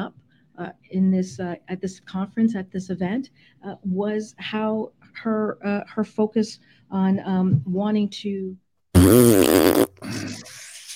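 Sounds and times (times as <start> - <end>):
speech: 0.6 - 10.6
fart sound effect: 9.0 - 10.4.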